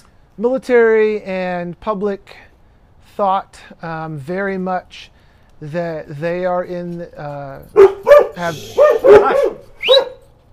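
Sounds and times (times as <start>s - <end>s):
speech: 0.4s - 2.5s, 3.1s - 10.1s
dog barking in a backyard: 7.8s - 10.2s.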